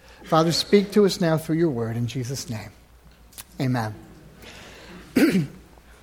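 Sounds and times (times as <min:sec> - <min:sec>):
speech: 0:00.2 - 0:02.8, 0:03.6 - 0:04.1, 0:05.2 - 0:05.6
throat clearing: 0:05.0 - 0:05.7.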